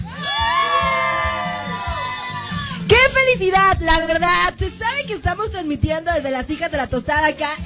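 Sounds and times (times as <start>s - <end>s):
high whoops: 0.0s - 2.9s
crowd cheering and shouting at a football victory party: 0.0s - 4.5s
speech: 3.3s - 7.6s.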